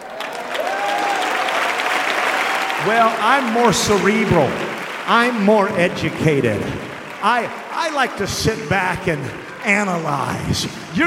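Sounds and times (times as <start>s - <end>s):
many people clapping at a lively church service: 0.0s - 11.0s
speech: 2.8s - 11.0s.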